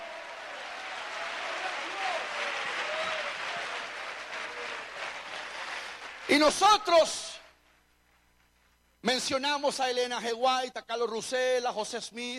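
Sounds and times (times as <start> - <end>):
faint scattered cheers: 0.0 - 5.5
crowd applauding: 0.0 - 6.9
speech: 6.3 - 7.3, 9.0 - 12.3.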